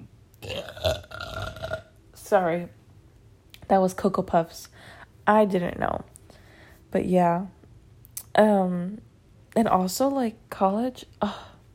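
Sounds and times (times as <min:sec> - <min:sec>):
long throaty burp: 0:00.4 - 0:02.0
speech: 0:02.3 - 0:02.8, 0:03.7 - 0:06.1, 0:06.9 - 0:07.6, 0:08.4 - 0:11.5.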